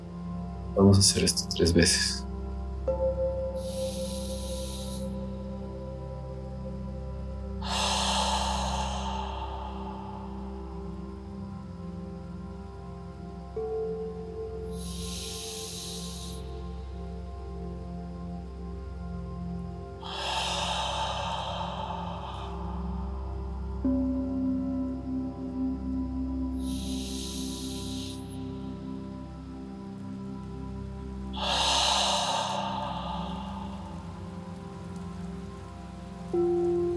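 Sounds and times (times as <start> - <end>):
soft steady drone: 0.0 - 36.9
speech: 0.8 - 2.3
deep breaths exhaling through the mouth: 3.6 - 6.1, 7.2 - 12.6, 14.6 - 17.1, 20.0 - 25.8, 26.4 - 29.0, 31.2 - 36.9.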